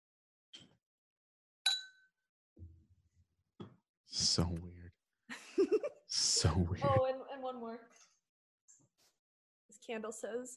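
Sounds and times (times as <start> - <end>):
two glasses clinking in a toast: 1.7 - 2.0
speech: 4.1 - 4.9, 5.6 - 8.0, 9.8 - 10.5
laughter: 4.2 - 4.6, 5.3 - 7.0.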